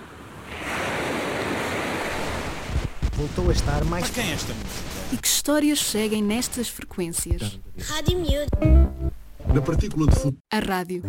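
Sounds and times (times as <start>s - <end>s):
sea waves rushing in: 0.0s - 5.2s
breezy hiss over the wash: 3.1s - 8.0s
speech: 3.2s - 11.0s.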